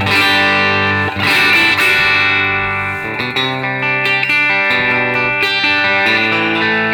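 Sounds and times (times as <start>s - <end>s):
electric guitar through Super Reverb amp with boost pedal: 0.0s - 6.9s.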